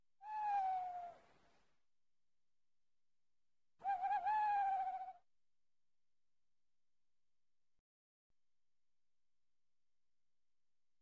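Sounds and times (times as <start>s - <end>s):
owl in Transylvania: 0.2s - 1.3s, 3.8s - 5.2s.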